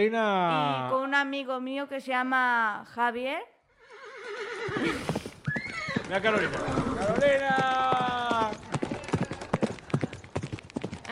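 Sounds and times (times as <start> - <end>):
speech: 0.0 - 3.6, 4.3 - 5.2, 6.1 - 8.0
horse hooves clip-clopping: 4.6 - 11.1.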